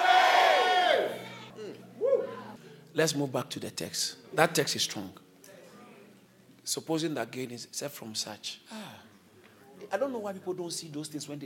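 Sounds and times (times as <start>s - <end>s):
scattered quieter shouts: 0.0s - 1.5s
audience shouting in unison: 0.0s - 2.5s
speech: 3.0s - 5.2s, 6.7s - 9.1s, 9.8s - 11.4s.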